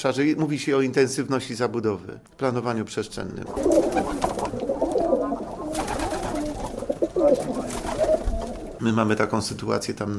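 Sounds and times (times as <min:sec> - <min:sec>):
speech: 0:00.0 - 0:04.5, 0:08.8 - 0:10.1
several pigeons cooing in throaty murmurs: 0:03.4 - 0:08.8
pigeon wings flapping rustle: 0:03.4 - 0:09.2.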